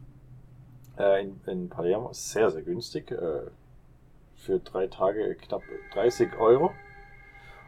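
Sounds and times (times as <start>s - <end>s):
speech: 1.0s - 3.6s, 4.4s - 6.8s
car horn blaring: 5.6s - 7.6s.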